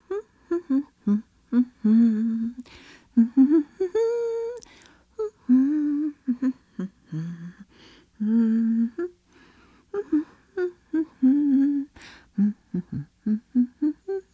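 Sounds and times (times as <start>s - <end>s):
woman humming: 0.0s - 7.6s, 8.2s - 9.2s, 9.9s - 14.3s.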